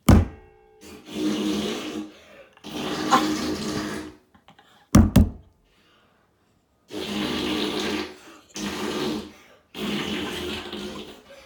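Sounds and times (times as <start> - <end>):
massive fart: 1.1 - 4.2, 6.9 - 11.2.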